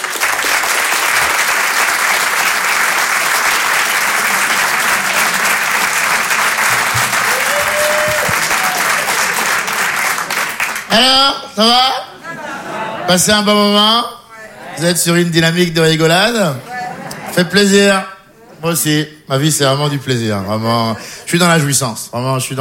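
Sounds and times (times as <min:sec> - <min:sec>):
comedy-show audience applauding in an ovation: 0:00.0 - 0:11.3
laughter: 0:02.7 - 0:15.4, 0:16.3 - 0:19.0, 0:20.4 - 0:21.8
speech: 0:10.9 - 0:12.0, 0:13.1 - 0:14.2, 0:14.8 - 0:16.7, 0:17.4 - 0:22.5.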